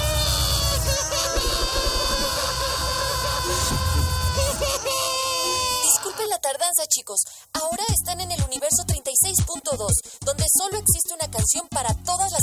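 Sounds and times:
people screaming and yelling while running away: 0.0 - 6.3
speech: 6.9 - 12.4.

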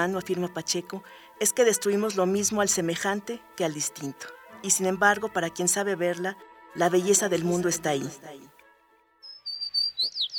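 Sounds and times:
speech: 0.0 - 8.5
sparrow chirping: 9.2 - 10.3.

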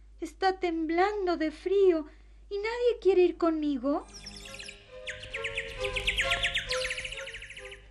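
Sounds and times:
speech: 0.3 - 4.4
robin singing in chirps and trilling phrases: 4.0 - 7.8.

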